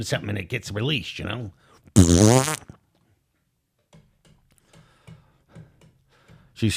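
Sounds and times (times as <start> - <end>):
speech: 0.0 - 2.8, 6.6 - 6.7
loud wobbling fart sound effect: 2.0 - 2.8.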